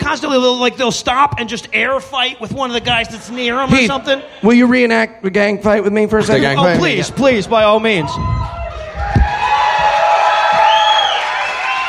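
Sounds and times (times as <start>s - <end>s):
speech: 0.1s - 8.6s
audience cheering and whooping at a live physical-comedy performance: 7.8s - 11.8s.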